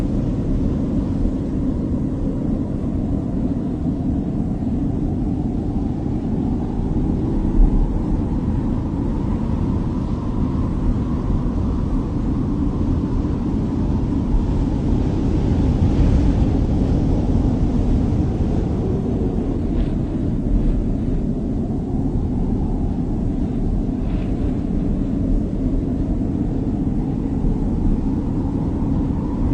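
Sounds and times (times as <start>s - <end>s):
slow wind: 0.0s - 29.5s.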